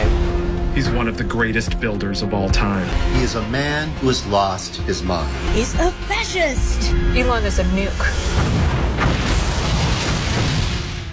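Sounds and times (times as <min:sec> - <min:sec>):
speech: 0:00.8 - 0:09.2
rocket taking off into space in a film trailer: 0:08.4 - 0:11.1.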